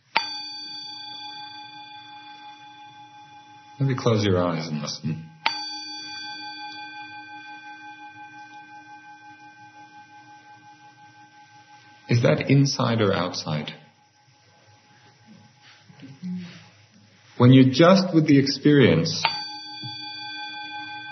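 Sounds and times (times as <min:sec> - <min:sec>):
meditation bell ringing: 0:00.0 - 0:15.8, 0:18.0 - 0:21.1
speech: 0:03.8 - 0:05.3, 0:12.2 - 0:13.8, 0:17.4 - 0:19.4.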